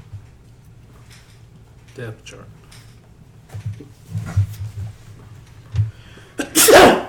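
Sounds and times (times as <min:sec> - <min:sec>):
speech: 0:02.0 - 0:02.6
loud sneeze: 0:06.4 - 0:07.0.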